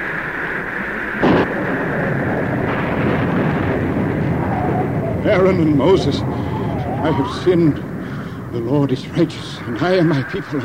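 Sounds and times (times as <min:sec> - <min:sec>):
heavy continuous storm rumble: 0:00.0 - 0:10.6
pounding rain or hail: 0:00.0 - 0:10.6
sharp crack of thunder: 0:01.2 - 0:10.6
speech: 0:05.4 - 0:07.9, 0:08.5 - 0:10.6.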